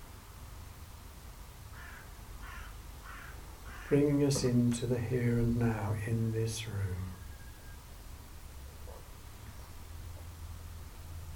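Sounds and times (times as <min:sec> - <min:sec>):
steady low rumble of background noise: 0:00.0 - 0:11.3
crow cawing: 0:01.7 - 0:04.0
speech: 0:03.9 - 0:07.2.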